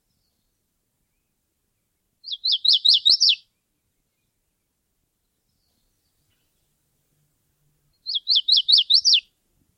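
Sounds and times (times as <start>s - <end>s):
bird song of sharp down-slurred whistled notes: 2.2s - 6.7s, 7.9s - 9.3s.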